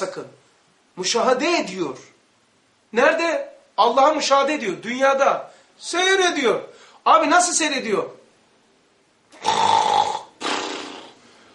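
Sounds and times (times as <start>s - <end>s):
speech: 0.0s - 0.4s, 1.0s - 2.1s, 2.9s - 8.2s
person imitating snoring: 9.4s - 11.2s.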